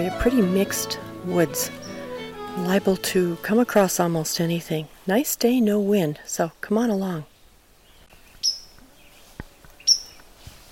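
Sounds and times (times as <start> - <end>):
speech: 0.0 - 1.9, 2.6 - 7.3
white-throated sparrow sharp high call notes: 0.0 - 4.6.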